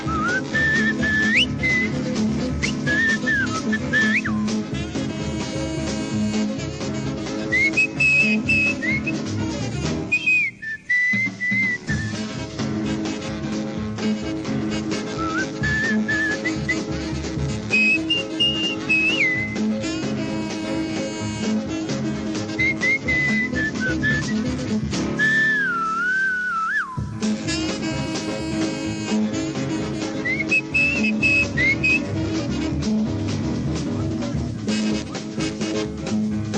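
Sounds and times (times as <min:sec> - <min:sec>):
bright whistled melody on an old recording: 0:00.0 - 0:04.6, 0:07.4 - 0:09.4, 0:10.0 - 0:12.4, 0:14.8 - 0:17.1, 0:17.7 - 0:19.8, 0:22.5 - 0:28.3, 0:30.0 - 0:32.5
rhythm band of piano and horns: 0:00.0 - 0:26.1, 0:26.8 - 0:36.5.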